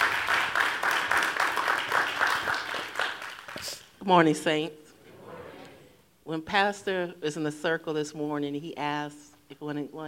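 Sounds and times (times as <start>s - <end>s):
audience clapping hands: 0.0s - 3.9s
speech: 4.0s - 4.8s, 6.3s - 10.0s.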